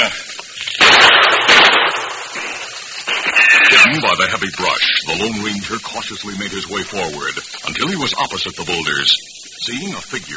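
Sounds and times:
gunshots among boulders and brush: 0.7s - 4.0s
speech: 3.8s - 10.3s.

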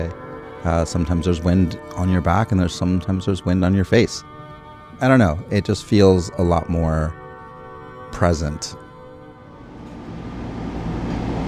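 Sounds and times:
speech: 0.0s - 4.3s, 5.0s - 7.2s, 8.1s - 8.8s
Gold Line metro light rail train rolling, heard from aboard: 9.6s - 11.4s.

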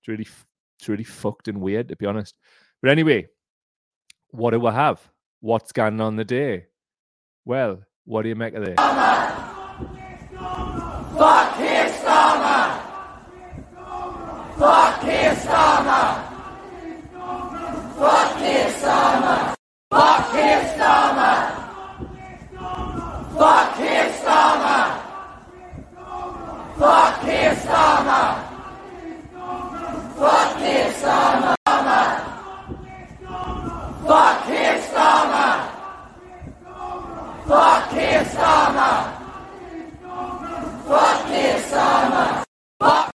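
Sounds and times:
speech: 0.0s - 3.4s, 4.3s - 6.7s, 7.4s - 10.6s, 11.2s - 12.5s
large crowd at a vigil chanting in unison: 8.8s - 43.1s.

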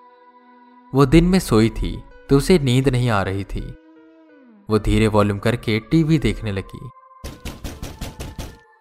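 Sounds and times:
speech: 0.9s - 3.8s, 4.7s - 7.0s
quick heavy knocks on a door: 7.3s - 8.6s.

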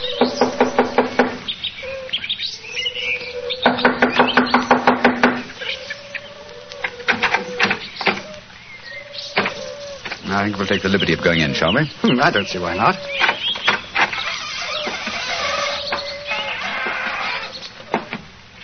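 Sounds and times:
chirpy sounds: 0.0s - 18.6s
knocking on a wooden door: 3.6s - 5.5s
speech: 10.4s - 13.2s.

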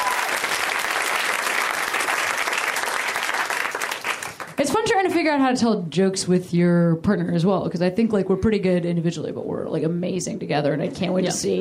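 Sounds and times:
audience applauding: 0.0s - 5.2s
speech: 4.6s - 11.5s.

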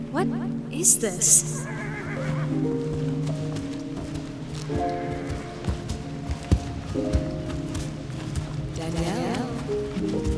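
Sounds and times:
speech: 0.2s - 1.9s
horse neighing: 0.8s - 2.6s
hooves knocking: 1.6s - 10.3s.

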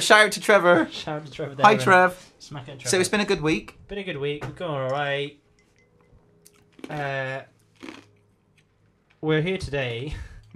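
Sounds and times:
speech: 0.0s - 5.4s, 6.8s - 8.0s, 9.2s - 10.5s
crunchy chewing on ice cubes: 6.5s - 8.8s.

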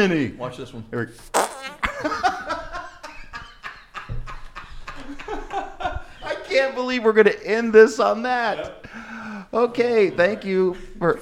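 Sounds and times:
speech: 0.0s - 2.5s, 6.5s - 8.8s, 9.5s - 11.2s
wet squelchy underarm farts made with an armpit: 1.3s - 1.8s
laughter: 1.7s - 6.5s.

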